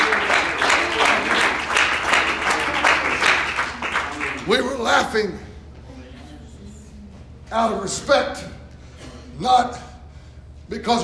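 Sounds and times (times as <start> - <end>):
audience clapping loudly: 0.0 - 5.1
speech: 4.5 - 5.5, 7.5 - 8.6, 9.4 - 9.8, 10.7 - 11.0.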